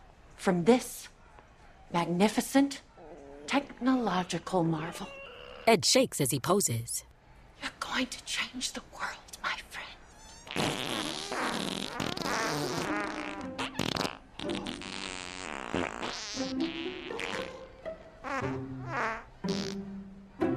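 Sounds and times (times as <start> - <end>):
speech: 0.4 - 1.1, 1.9 - 2.9, 3.5 - 9.8
robot making a buzzy sputtering mechanical fart noise: 10.4 - 17.6, 18.3 - 19.8.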